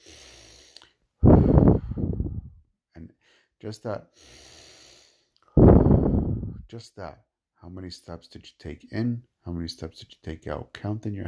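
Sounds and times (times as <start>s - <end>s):
person breathing in through nose and out through mouth: 0.0s - 2.6s, 3.2s - 6.7s
speech: 3.6s - 4.5s, 6.7s - 11.2s.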